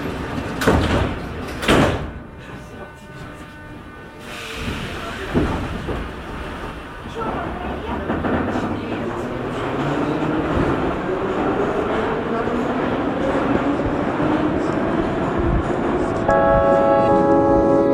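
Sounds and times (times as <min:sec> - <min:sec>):
metro train doors sliding and thumping shut: 0:00.0 - 0:02.6, 0:04.2 - 0:09.0
metro train rumbling: 0:00.0 - 0:17.8.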